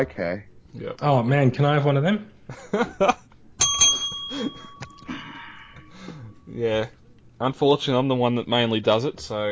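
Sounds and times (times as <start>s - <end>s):
speech: 0.0s - 3.2s, 4.3s - 5.2s, 6.5s - 9.4s
bright bell rung to mark a conversational tangent: 3.6s - 6.6s.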